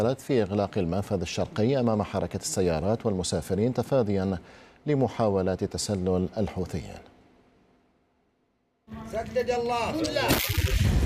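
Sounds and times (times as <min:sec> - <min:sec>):
speech: 0:00.0 - 0:07.1, 0:08.9 - 0:11.0
artillery cannon fire: 0:10.2 - 0:11.0.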